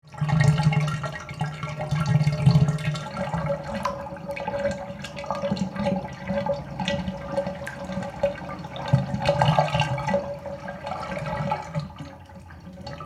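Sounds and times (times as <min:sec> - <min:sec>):
bathtub water draining: 0:00.0 - 0:13.0.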